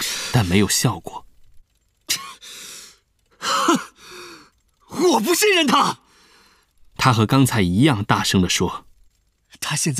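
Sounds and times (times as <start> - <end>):
speech: 0.4 - 1.3, 5.0 - 6.0, 7.0 - 8.9, 9.7 - 9.9
deep breaths: 2.4 - 4.7, 6.1 - 6.8.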